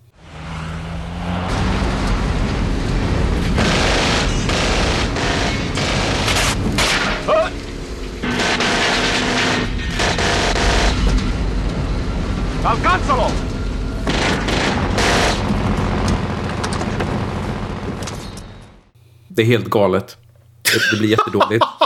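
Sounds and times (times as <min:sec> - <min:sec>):
tanker truck engine roaring: 0:00.0 - 0:18.9
sharp broadband blasts: 0:01.1 - 0:11.6, 0:12.5 - 0:18.4
machine gun fire in a film scene: 0:03.5 - 0:07.4, 0:08.2 - 0:11.0, 0:14.0 - 0:18.0
speech: 0:19.4 - 0:21.7
laughter: 0:20.7 - 0:21.8.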